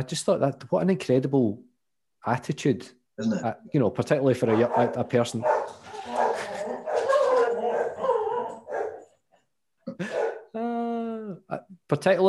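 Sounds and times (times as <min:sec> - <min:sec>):
speech: 0:00.0 - 0:05.8, 0:11.9 - 0:12.2
several dogs barking and yipping: 0:04.4 - 0:09.2, 0:10.0 - 0:10.5
dog howling with a sustained wavering howl: 0:04.5 - 0:09.1.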